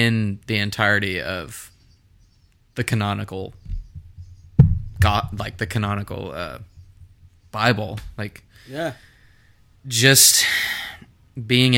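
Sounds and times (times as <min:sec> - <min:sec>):
speech: 0:00.0 - 0:01.7, 0:02.8 - 0:03.6, 0:05.0 - 0:06.7, 0:07.5 - 0:09.1, 0:09.8 - 0:11.7
person sneezing: 0:08.7 - 0:09.1.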